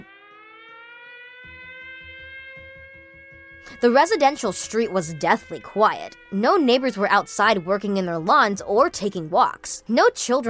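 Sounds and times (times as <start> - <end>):
siren wailing: 0.0 - 10.4
speech: 3.6 - 10.4.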